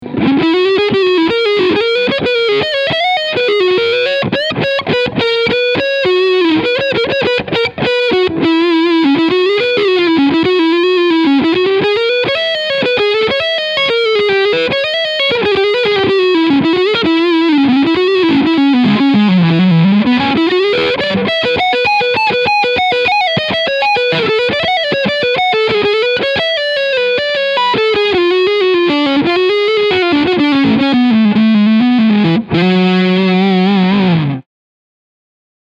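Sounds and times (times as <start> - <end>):
electric guitar lead sound on front pickup: 0.0 - 34.5.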